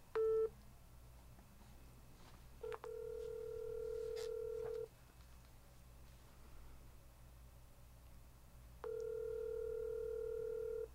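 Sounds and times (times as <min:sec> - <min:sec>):
low hiss: 0:00.0 - 0:10.9
telephone line tones while a call is dialed: 0:02.6 - 0:04.9, 0:08.8 - 0:10.9.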